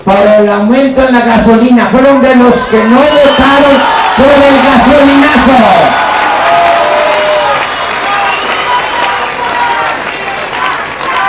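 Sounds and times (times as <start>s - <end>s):
speech: 0.0s - 6.0s
crowd applause at a rally: 2.8s - 11.2s.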